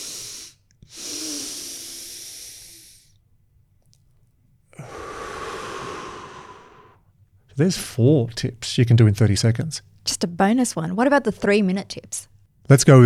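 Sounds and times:
long steady airy exhale: 0:00.0 - 0:03.2, 0:04.8 - 0:07.1
short sharp double inhale of a physiological sigh: 0:00.0 - 0:03.2, 0:04.7 - 0:07.1
speech: 0:07.6 - 0:13.0.

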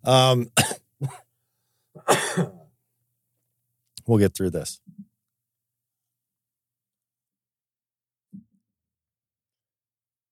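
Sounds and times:
speech: 0:00.0 - 0:01.2, 0:04.1 - 0:05.0
harsh raspy coughing fit: 0:00.6 - 0:01.3, 0:02.0 - 0:02.7.

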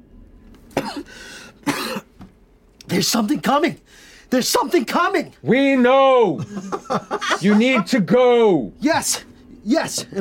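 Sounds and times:
person coughing after an impact in a dust cloud: 0:00.7 - 0:02.1
speech: 0:01.0 - 0:02.0, 0:02.9 - 0:10.1
laughter: 0:06.4 - 0:08.1.

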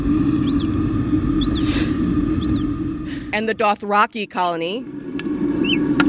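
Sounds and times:
steady mid tone: 0:00.0 - 0:05.8
loud low hum: 0:00.0 - 0:06.0
naked mole-rat soft chirps from a lab colony: 0:00.4 - 0:00.7, 0:01.4 - 0:01.8, 0:02.4 - 0:02.7
speech: 0:03.4 - 0:05.0.

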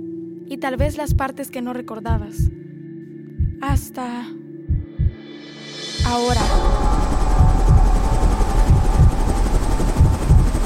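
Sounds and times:
speech: 0:00.5 - 0:02.6, 0:03.6 - 0:04.4, 0:06.0 - 0:06.9
helicopter engine roaring: 0:06.3 - 0:10.6.

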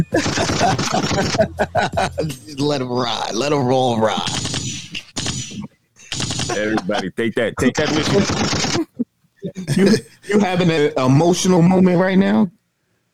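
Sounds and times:
laughter: 0:00.0 - 0:02.7, 0:04.0 - 0:10.9
speech: 0:00.0 - 0:04.6, 0:06.6 - 0:08.6, 0:09.7 - 0:12.6
gunshot sound effects: 0:00.2 - 0:01.4, 0:04.2 - 0:06.8, 0:07.8 - 0:08.8
machine gun fire sound effects: 0:00.2 - 0:01.4, 0:04.2 - 0:06.7, 0:07.8 - 0:08.8.

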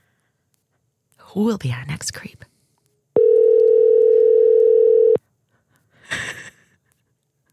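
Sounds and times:
speech: 0:01.3 - 0:02.5
phone line ringback tone: 0:03.2 - 0:05.2.

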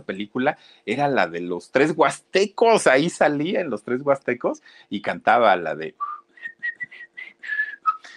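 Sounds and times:
speech: 0:00.0 - 0:06.2
person whistling a tune: 0:06.0 - 0:08.1.

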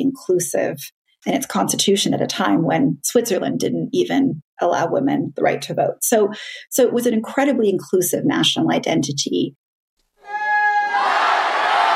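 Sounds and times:
speech: 0:00.0 - 0:09.6
large stadium crowd shouting and cheering: 0:10.2 - 0:11.9.

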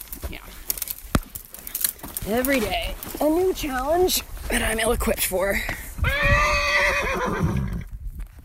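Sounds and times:
speech: 0:02.3 - 0:07.7
mare whinnying at a creek: 0:06.0 - 0:07.9.

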